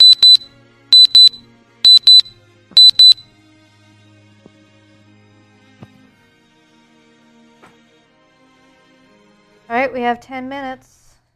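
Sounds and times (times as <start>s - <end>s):
wristwatch alarm beeping in high-pitched electronic double beeps: 0.0s - 3.2s
speech: 9.7s - 11.0s.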